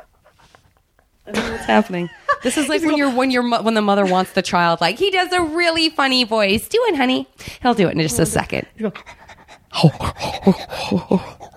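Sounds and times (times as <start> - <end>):
male dog panting: 0.0 - 1.2, 8.2 - 11.5
speech: 1.3 - 11.5.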